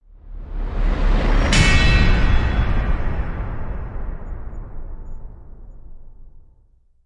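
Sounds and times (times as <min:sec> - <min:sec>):
chime: 0:01.4 - 0:05.4
hit: 0:01.5 - 0:06.6.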